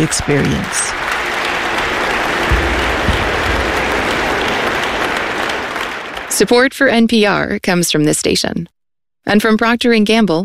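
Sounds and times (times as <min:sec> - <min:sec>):
speech: 0:00.0 - 0:01.1, 0:06.4 - 0:10.4
audience of thousands applauding in a reverberant concert hall: 0:00.0 - 0:06.6
low thumps: 0:01.8 - 0:06.1.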